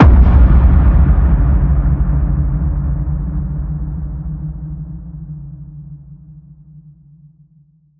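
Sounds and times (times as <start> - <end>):
cannon boom: 0.0 - 5.9.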